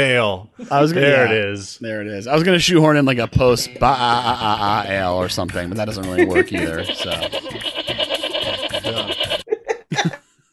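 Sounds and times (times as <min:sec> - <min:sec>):
speech: 0:00.0 - 0:07.8
laughter: 0:03.4 - 0:10.2
goat bleating: 0:06.2 - 0:09.4.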